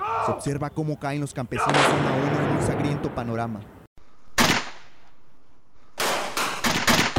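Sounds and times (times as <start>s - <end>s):
speech: 0.2s - 3.8s
gunshots: 1.6s - 3.8s, 4.4s - 5.0s, 6.0s - 7.1s.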